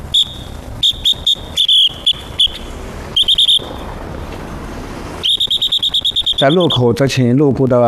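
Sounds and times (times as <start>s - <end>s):
shrill traffic police whistle blasts: 0.0s - 3.8s, 5.2s - 6.9s
steady street noise: 0.0s - 7.8s
speech: 6.4s - 7.8s.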